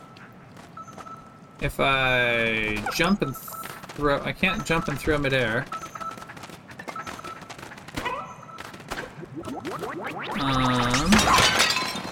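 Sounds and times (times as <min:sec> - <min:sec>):
busy game-like sounds: 0:00.0 - 0:12.1
speech: 0:01.6 - 0:05.8
ceramics shattering: 0:10.4 - 0:12.1.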